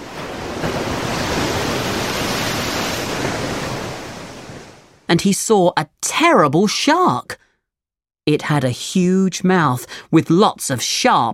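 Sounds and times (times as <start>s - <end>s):
big wave crashing and splashing: 0.0s - 5.0s
speech: 5.1s - 7.4s, 8.3s - 11.3s.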